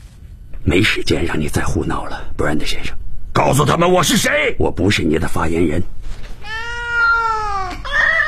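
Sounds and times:
speech: 0:00.6 - 0:06.2
cat meowing: 0:06.4 - 0:08.2.

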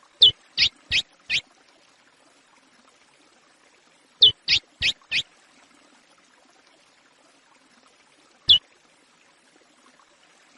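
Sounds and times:
chestnut-bellied seed finch singing: 0:00.2 - 0:01.4, 0:04.2 - 0:05.2.

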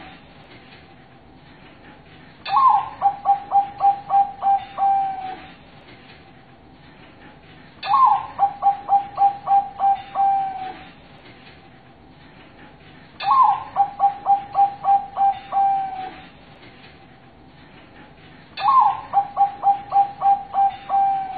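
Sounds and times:
zebra dove cooing master song: 0:02.5 - 0:05.5, 0:07.8 - 0:10.9, 0:13.2 - 0:16.3, 0:18.6 - 0:21.3.

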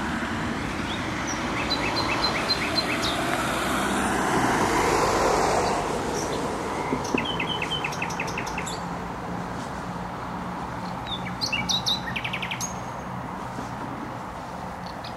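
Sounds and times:
motorway traffic roar: 0:00.0 - 0:15.1
nightingale singing in bushes: 0:00.8 - 0:03.4, 0:05.6 - 0:08.9, 0:10.8 - 0:13.0, 0:14.8 - 0:15.1.

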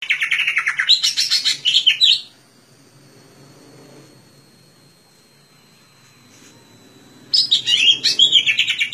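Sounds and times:
Greater green leafbird song: 0:00.0 - 0:02.4, 0:07.2 - 0:08.9.

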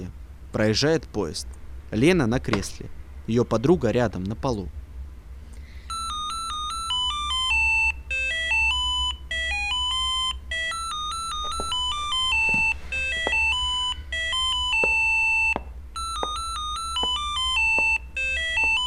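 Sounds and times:
speech: 0:00.5 - 0:04.8
telephone ringing with a melodic electronic ringtone: 0:05.9 - 0:18.8.

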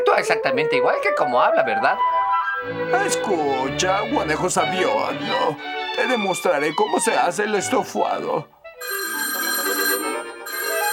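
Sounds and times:
speech: 0:00.1 - 0:09.0
telephone ringing with an electric jangle: 0:08.8 - 0:10.9.

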